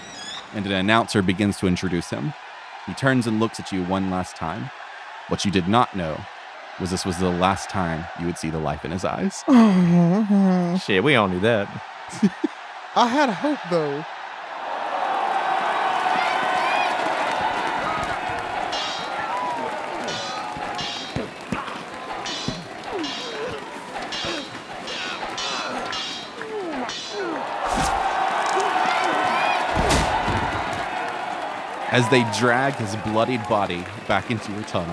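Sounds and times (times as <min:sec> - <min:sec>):
large crowd roaring and cheering in an echoing arena: 0:00.0 - 0:34.9
speech: 0:00.5 - 0:14.2, 0:31.9 - 0:34.9
laughter: 0:09.5 - 0:14.0, 0:19.0 - 0:29.7, 0:31.9 - 0:34.9
heavy thuds and slams: 0:29.7 - 0:30.9.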